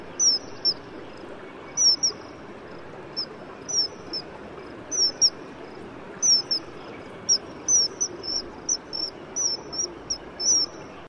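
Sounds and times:
faint steady hiss: 0:00.0 - 0:11.0
common kingfisher piping whistles: 0:01.8 - 0:02.2, 0:03.7 - 0:04.2, 0:04.9 - 0:05.3, 0:06.2 - 0:06.6, 0:07.3 - 0:10.9.

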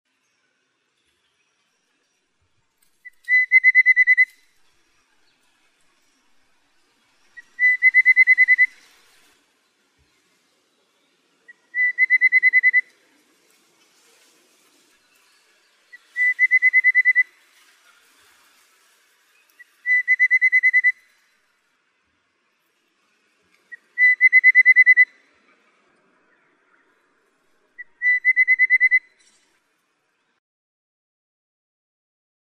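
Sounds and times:
rufous-capped babbler calling: 0:03.0 - 0:04.4, 0:07.4 - 0:08.8, 0:11.5 - 0:13.0, 0:15.9 - 0:17.4, 0:19.6 - 0:21.1, 0:23.7 - 0:25.1, 0:27.8 - 0:29.2.

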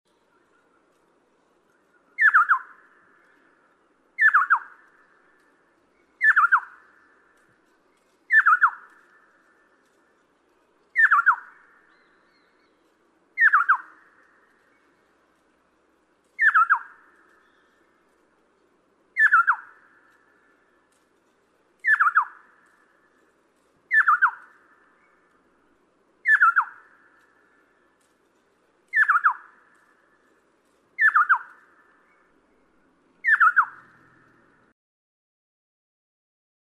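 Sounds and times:
Erythrogenys gravivox scimitar babbler calling: 0:02.0 - 0:03.4, 0:04.2 - 0:05.5, 0:06.2 - 0:07.2, 0:08.3 - 0:09.6, 0:10.9 - 0:12.7, 0:13.4 - 0:14.9, 0:16.4 - 0:17.8, 0:19.2 - 0:20.5, 0:21.8 - 0:23.0, 0:23.9 - 0:25.3, 0:26.2 - 0:27.6, 0:28.9 - 0:30.1, 0:31.0 - 0:32.3, 0:33.2 - 0:34.7.

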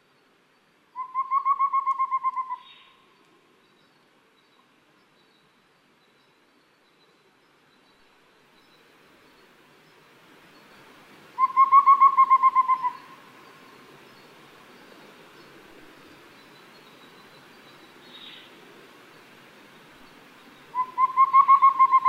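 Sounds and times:
collared owlet calling: 0:01.0 - 0:02.9, 0:11.4 - 0:13.6, 0:20.7 - 0:22.0.

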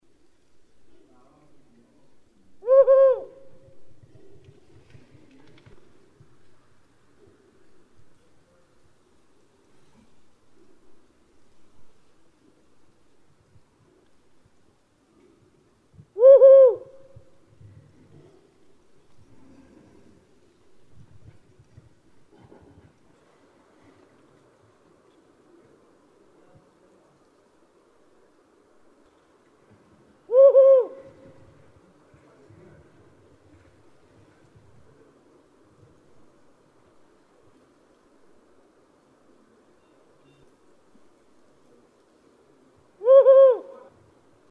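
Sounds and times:
tawny owl calling: 0:02.6 - 0:03.7, 0:16.2 - 0:17.2, 0:30.3 - 0:31.4, 0:43.0 - 0:43.9.

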